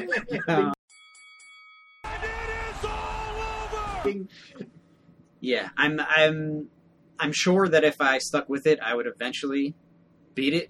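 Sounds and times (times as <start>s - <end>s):
laughter: 0.0s - 0.8s
speech: 0.0s - 0.8s, 4.0s - 4.8s, 5.4s - 9.8s, 10.4s - 10.6s
faint bell ringing: 0.3s - 2.7s.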